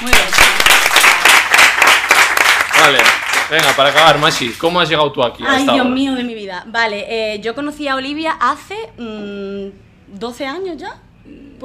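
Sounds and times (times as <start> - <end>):
crowd applauding: 0.0 - 4.7
speech: 2.8 - 11.6.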